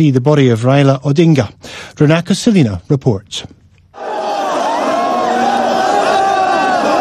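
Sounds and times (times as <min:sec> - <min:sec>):
speech: 0:00.0 - 0:04.1
crowd cries and whoops: 0:04.0 - 0:07.0
dense crowd of tens of thousands shouting and chanting in city streets: 0:04.0 - 0:07.0.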